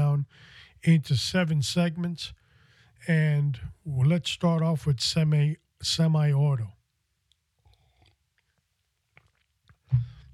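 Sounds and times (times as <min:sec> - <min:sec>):
speech: 0:00.8 - 0:02.4, 0:03.0 - 0:06.8
faint lip and mouth noises: 0:07.2 - 0:10.3
person sipping coffee: 0:07.6 - 0:10.3
low gulp: 0:09.2 - 0:10.3.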